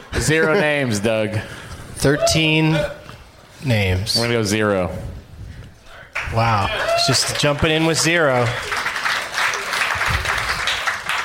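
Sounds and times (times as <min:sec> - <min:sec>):
speech: 0:00.2 - 0:03.0, 0:03.6 - 0:05.2, 0:06.3 - 0:08.8
audience applause at a live comedy show: 0:06.2 - 0:11.2.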